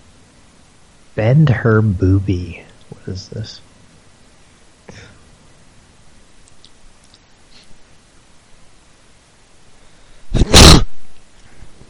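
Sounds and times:
speech: 1.2s - 3.7s
dog sneezing: 10.4s - 11.0s.

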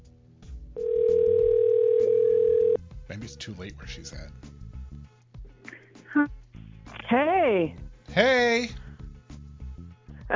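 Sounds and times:
steady telephone line tone as a call is placed: 0.8s - 2.8s
speech: 3.5s - 4.6s, 7.1s - 8.8s.

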